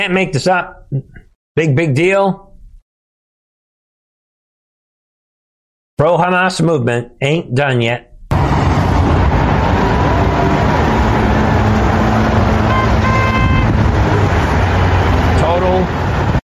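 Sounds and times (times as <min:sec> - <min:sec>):
speech: 0:00.0 - 0:02.5, 0:06.0 - 0:08.1
roar of blocked traffic in Seattle: 0:08.3 - 0:16.4
car horns honking in blocked traffic: 0:11.2 - 0:13.9.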